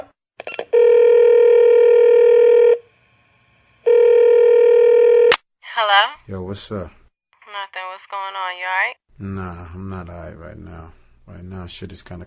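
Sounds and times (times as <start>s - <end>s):
telephone ringback tones: 0.7s - 2.8s, 3.9s - 5.3s
speech: 6.5s - 7.0s, 11.6s - 12.2s.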